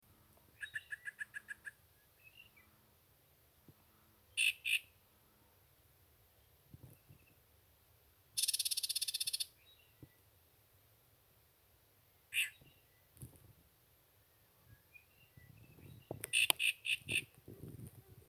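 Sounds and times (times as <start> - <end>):
icterid calls: 0.6 - 2.6, 4.3 - 4.9, 8.4 - 10.2, 12.3 - 13.0, 14.8 - 17.3.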